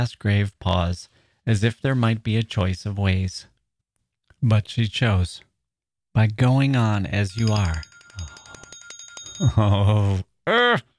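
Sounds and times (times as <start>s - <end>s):
speech: 0.0s - 3.5s, 4.4s - 5.5s, 6.2s - 8.3s, 9.4s - 10.9s
timer alarm ringing in bright electronic pulses: 7.3s - 9.6s.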